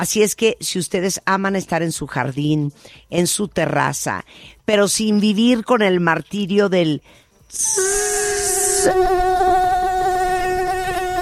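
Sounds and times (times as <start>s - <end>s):
speech: 0.0s - 9.3s
mosquito whining: 7.5s - 11.2s.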